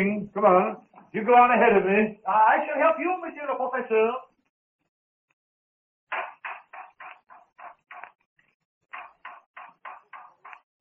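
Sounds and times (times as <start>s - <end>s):
speech: 0.0s - 4.3s
sharp knocks: 6.1s - 8.2s, 8.9s - 10.6s.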